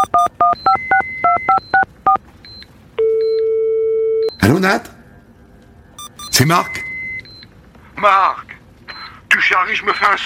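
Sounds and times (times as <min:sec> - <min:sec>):
telephone keypad tones as a number is dialed: 0:00.0 - 0:04.3
speech: 0:04.5 - 0:05.0, 0:06.4 - 0:06.9, 0:08.0 - 0:08.5, 0:09.4 - 0:10.2.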